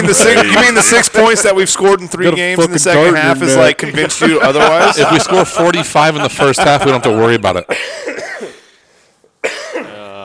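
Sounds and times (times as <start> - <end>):
laughter: 0.0 - 7.8
speech: 0.0 - 8.2
person coughing: 7.7 - 8.8, 9.4 - 10.1.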